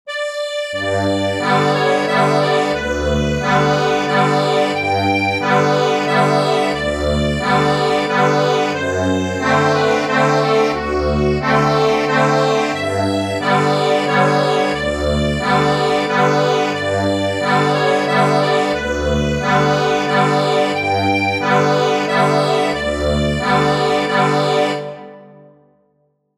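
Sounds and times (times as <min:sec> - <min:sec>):
accordion playing a waltz: 0:00.1 - 0:25.4.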